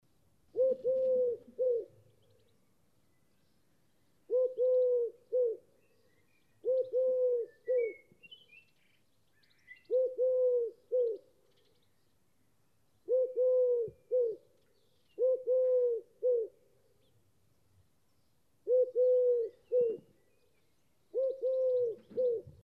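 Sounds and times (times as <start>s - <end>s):
Eurasian collared dove singing: 0.5s - 2.5s, 4.2s - 11.8s, 13.0s - 17.2s, 18.6s - 22.6s.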